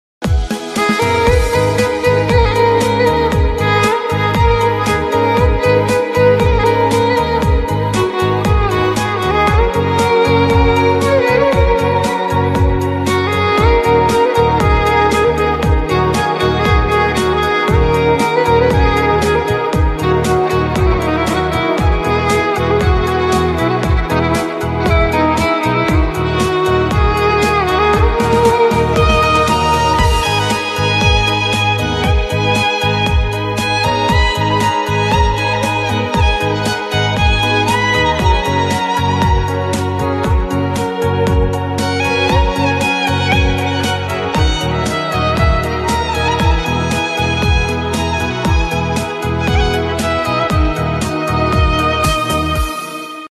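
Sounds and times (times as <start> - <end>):
sad violin music: 0.2 - 53.3.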